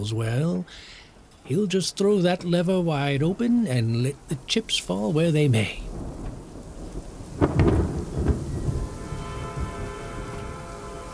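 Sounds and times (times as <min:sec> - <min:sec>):
speech: 0:00.0 - 0:06.0
heavy rain hissing: 0:00.0 - 0:11.1
thunder crack rolling into a low lingering rumble: 0:05.7 - 0:11.1.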